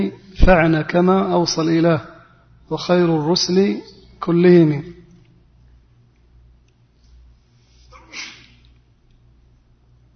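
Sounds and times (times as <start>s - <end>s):
speech: 0.0s - 2.1s, 2.7s - 5.0s
low steady hum: 0.0s - 10.1s
sneeze: 7.9s - 8.6s.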